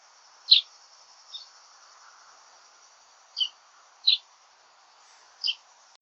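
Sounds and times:
common chaffinch Fringilla coelebs calls: 0:00.3 - 0:02.3, 0:03.2 - 0:04.3, 0:05.4 - 0:05.7.

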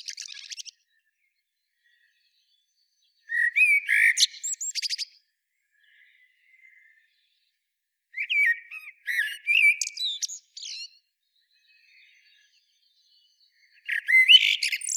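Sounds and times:
Eurasian blackbird Turdus merula singing: 0:00.0 - 0:01.0, 0:03.2 - 0:05.2, 0:08.2 - 0:11.0, 0:11.6 - 0:14.9.

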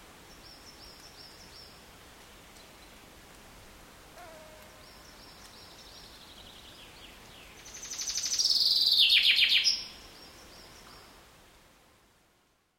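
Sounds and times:
common chaffinch Fringilla coelebs singing a descending trill: 0:04.8 - 0:11.0.

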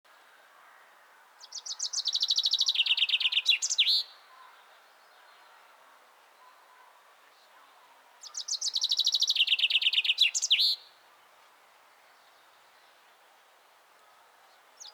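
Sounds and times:
common chaffinch Fringilla coelebs singing: 0:01.4 - 0:04.2, 0:08.2 - 0:10.9.

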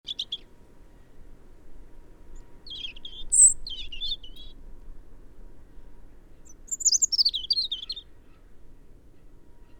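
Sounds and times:
European robin Erithacus rubecula singing thin warbling and trilled notes: 0:00.1 - 0:00.5, 0:02.4 - 0:04.6, 0:06.5 - 0:08.1
low steady background hum: 0:00.1 - 0:09.7.

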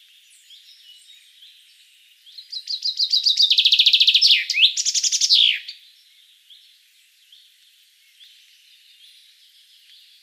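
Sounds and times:
common chaffinch Fringilla coelebs singing: 0:02.3 - 0:05.8.

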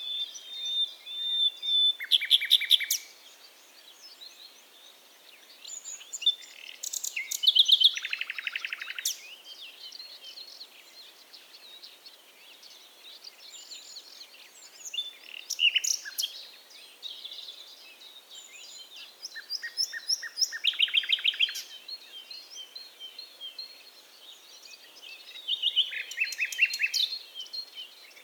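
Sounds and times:
Common nightingale Luscinia megarhynchos singing: 0:00.0 - 0:28.2.

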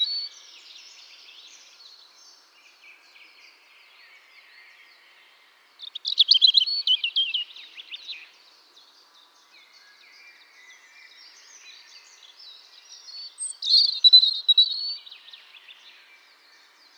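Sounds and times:
European robin Erithacus rubecula singing: 0:05.8 - 0:08.0, 0:12.9 - 0:15.8.

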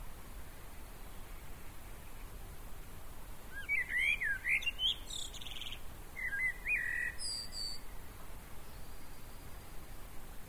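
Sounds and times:
soft background hiss: 0:00.0 - 0:10.4
common blackbird Turdus merula singing: 0:03.5 - 0:07.9.

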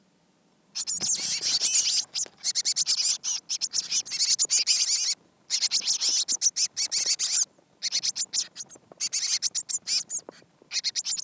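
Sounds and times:
Eurasian blue tit Cyanistes caeruleus churring and chattering calls: 0:00.8 - 0:11.2.

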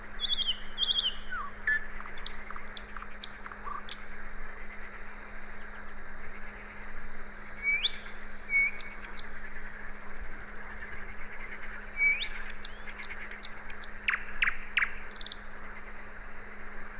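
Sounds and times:
common nightingale Luscinia megarhynchos singing whistles and high notes: 0:00.0 - 0:04.0, 0:06.6 - 0:09.5, 0:11.0 - 0:15.5
faint steady hum: 0:00.0 - 0:16.9.

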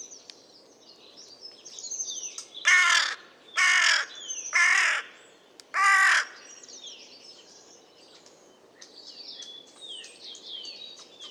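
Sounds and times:
birds twittering: 0:01.2 - 0:11.3
carrion crow cawing: 0:02.7 - 0:05.2, 0:05.8 - 0:06.4.

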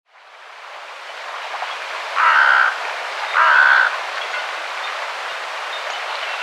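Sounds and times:
carrion crow Corvus corone giving harsh hoarse caws: 0:02.2 - 0:02.8, 0:03.4 - 0:04.0.

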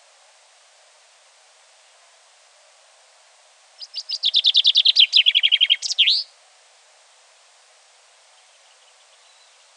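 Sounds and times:
speech: 0:03.8 - 0:04.3
common chaffinch Fringilla coelebs singing: 0:03.8 - 0:06.4, 0:08.3 - 0:09.7.

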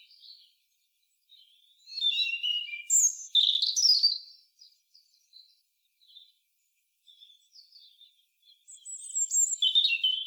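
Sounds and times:
Erithacus rubecula European robin singing: 0:01.3 - 0:05.5, 0:07.1 - 0:10.2.

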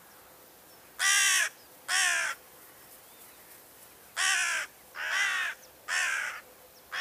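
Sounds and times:
carrion crow Corvus corone giving harsh hoarse caws: 0:01.0 - 0:02.4, 0:04.2 - 0:07.0.

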